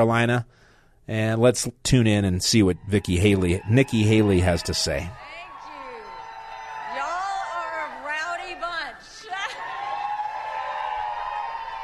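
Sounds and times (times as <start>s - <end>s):
speech: 0.0s - 5.3s
small crowd cheering and whooping: 2.5s - 11.8s.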